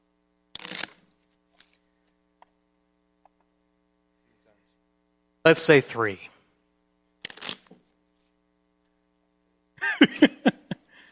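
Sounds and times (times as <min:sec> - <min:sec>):
steady low electrical hum: 0:00.0 - 0:11.1
deck of playing cards riffle-shuffled: 0:00.6 - 0:01.9, 0:07.2 - 0:08.4
speech: 0:05.4 - 0:06.3
laughter: 0:09.8 - 0:10.9.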